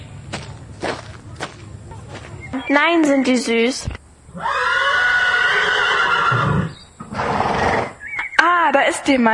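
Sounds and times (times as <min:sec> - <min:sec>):
speech: 0:02.5 - 0:04.6, 0:08.8 - 0:09.3
horse neighing with a shrill whinny: 0:04.3 - 0:08.0.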